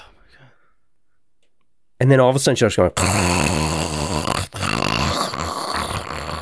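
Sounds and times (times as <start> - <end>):
speech: 2.0 - 4.0
voice imitating a woman's harsh snore-like gasping: 3.0 - 6.3.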